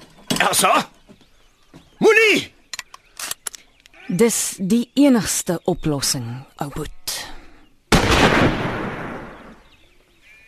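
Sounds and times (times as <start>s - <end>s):
speech: 0.4s - 0.9s, 2.0s - 2.6s, 4.1s - 7.2s
rifle gunshot in a dramatized scene: 7.9s - 9.6s.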